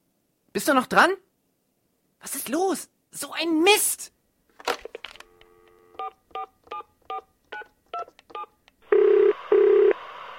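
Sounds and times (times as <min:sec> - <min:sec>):
speech: 0:00.6 - 0:01.2, 0:02.2 - 0:05.0
phone keypad dialing beeps: 0:06.0 - 0:08.5
steady phone line tone: 0:08.4 - 0:10.0.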